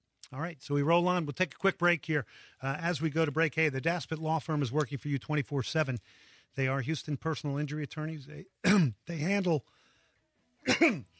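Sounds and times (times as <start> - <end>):
speech: 0.3 - 9.8, 10.6 - 11.1
man clearing his throat: 8.6 - 9.0, 10.7 - 11.1.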